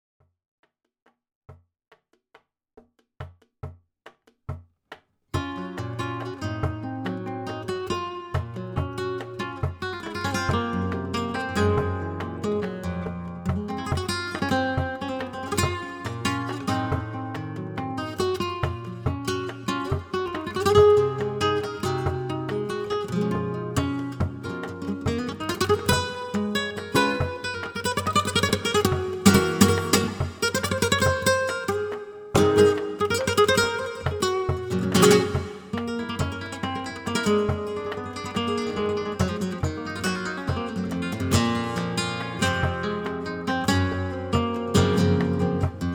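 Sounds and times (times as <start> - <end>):
flamenco guitar falseta in petenera and solea style: 5.4 - 45.9.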